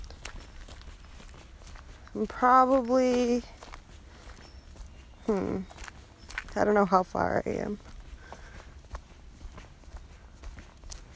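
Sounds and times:
footsteps of a hiker crunching along a woodland trail: 0.0 - 11.1
speech: 2.2 - 3.6, 5.3 - 5.8, 6.6 - 7.9.

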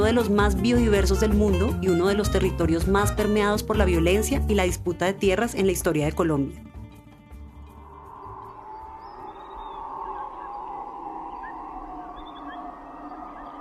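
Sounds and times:
speech: 0.1 - 6.7
birds chirping in a jungle: 7.6 - 13.6
jungle insect drone at dawn: 7.6 - 13.6
low wailing possibly from monkeys: 7.6 - 13.6.

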